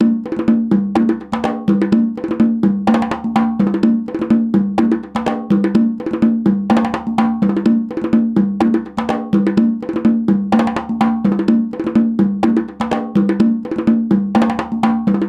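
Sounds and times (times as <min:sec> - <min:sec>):
percussion: 0:00.0 - 0:15.2.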